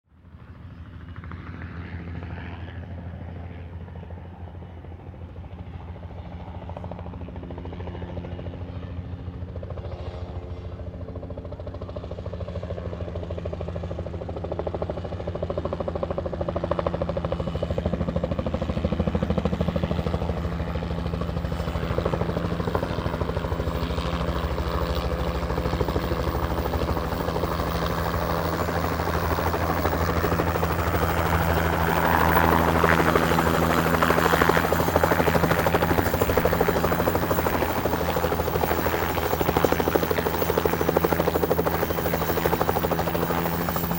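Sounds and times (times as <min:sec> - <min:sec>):
helicopter landing: 0:00.3 - 0:43.9.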